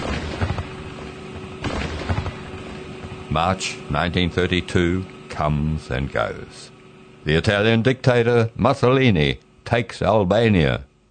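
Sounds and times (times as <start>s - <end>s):
naval anti-aircraft barrage fired at an enemy raider: 0.0s - 3.3s
constant noisy hiss: 0.0s - 11.0s
speech: 3.4s - 10.9s.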